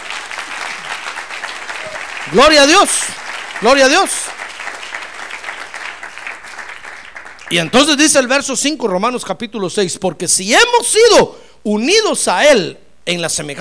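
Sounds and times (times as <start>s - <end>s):
audience applauding during a sermon: 0.0s - 8.2s
speech: 2.3s - 4.3s, 7.5s - 13.5s.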